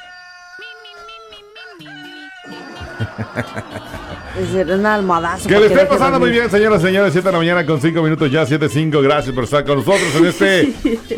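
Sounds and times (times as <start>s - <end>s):
rooster crowing: 0.0s - 7.0s
speech: 1.8s - 11.1s
laughter: 2.4s - 8.4s.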